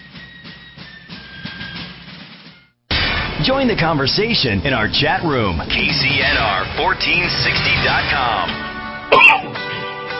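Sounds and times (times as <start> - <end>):
speech: 3.4 - 9.6
dry cough: 9.1 - 9.6.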